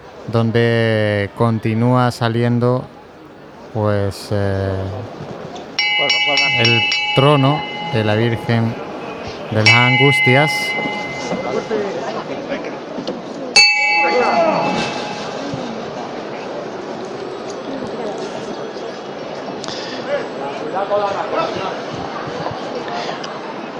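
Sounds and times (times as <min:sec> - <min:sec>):
crowd murmur at a Holy Week procession: 0:00.0 - 0:23.7
speech: 0:00.2 - 0:03.0, 0:03.7 - 0:05.4, 0:06.6 - 0:08.8, 0:09.5 - 0:10.9
bell strike during a Holy Week procession in Jaén: 0:05.8 - 0:12.0, 0:13.6 - 0:15.9.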